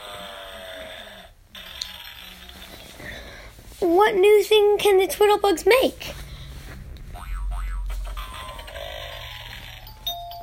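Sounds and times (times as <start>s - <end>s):
speech: 3.8s - 6.2s
homemade contraption doorbell going off: 9.8s - 10.4s.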